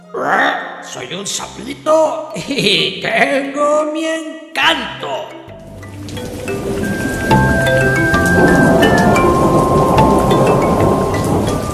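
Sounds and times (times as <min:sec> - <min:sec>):
speech: 0:00.1 - 0:05.4
heavy rain pouring: 0:05.6 - 0:11.7
deep low thunder rumbling: 0:06.5 - 0:11.7.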